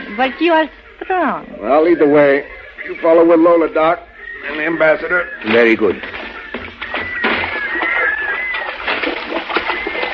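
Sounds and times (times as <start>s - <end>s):
faint chirping: 0.0s - 8.9s
speech: 0.2s - 6.2s
water sloshing as people wade through a knee-deep river: 5.4s - 10.1s.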